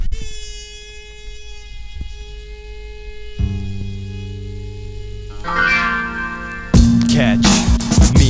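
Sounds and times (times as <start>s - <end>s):
short string notes: 3.4s - 8.1s.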